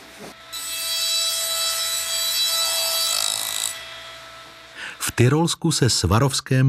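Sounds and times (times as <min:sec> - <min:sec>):
glass grinding machines whirring: 0:00.0 - 0:05.5
speech: 0:05.2 - 0:06.6.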